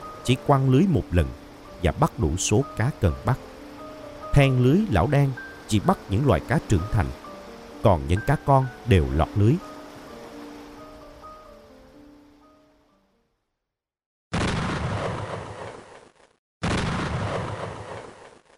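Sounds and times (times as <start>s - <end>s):
gentle music: 0.0s - 13.6s
speech: 0.2s - 3.5s, 4.4s - 7.2s, 7.8s - 9.7s
distant mine blasts exploding: 16.6s - 18.2s.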